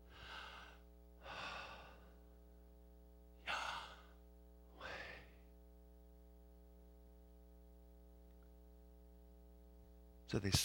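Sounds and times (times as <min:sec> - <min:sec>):
slow deliberate breathing in and out: 0:00.0 - 0:02.4, 0:03.4 - 0:04.2, 0:04.8 - 0:05.5
faint steady electrical hum: 0:00.0 - 0:10.6
speech: 0:10.3 - 0:10.6.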